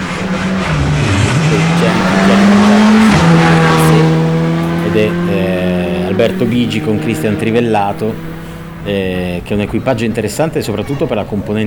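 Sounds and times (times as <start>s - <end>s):
rally car passing on a stage road during a Ligurian rally: 0.0s - 11.6s
speech: 6.2s - 11.6s.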